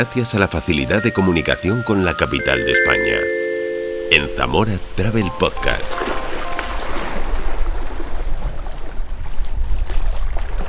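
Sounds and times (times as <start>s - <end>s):
speech: 0.0s - 3.4s, 4.1s - 6.2s
ocean waves washing against the coast: 1.1s - 9.4s
wind noise: 6.0s - 10.6s.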